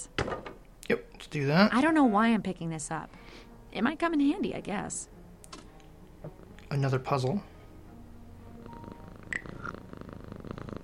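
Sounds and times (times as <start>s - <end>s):
speech: 0.0s - 5.1s, 6.2s - 7.5s
cat purring by an open window: 6.3s - 7.2s, 8.4s - 10.8s.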